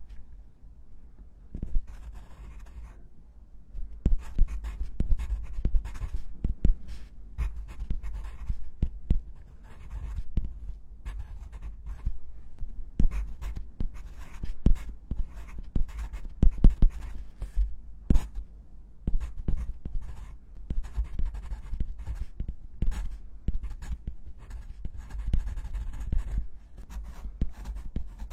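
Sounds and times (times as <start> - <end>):
pencil and pen writing on paper: 1.6 - 2.8, 4.1 - 6.2, 6.9 - 8.6, 9.6 - 12.1, 13.0 - 18.3, 19.2 - 20.2, 20.8 - 28.3.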